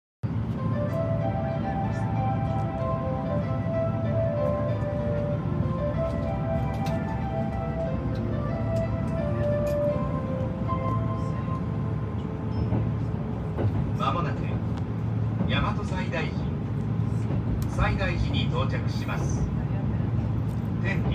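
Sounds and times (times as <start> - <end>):
Kintetsu Kyoto Line train sounds: 0.2 - 21.1.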